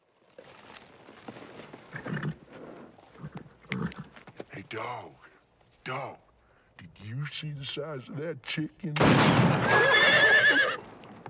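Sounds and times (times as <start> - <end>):
faint hoof clops of horses being ridden: 0.4 - 5.0
horse snorting or whinnying: 1.9 - 2.4, 3.2 - 4.1, 9.7 - 10.8
speech: 4.7 - 5.2, 5.8 - 6.2, 6.9 - 10.9.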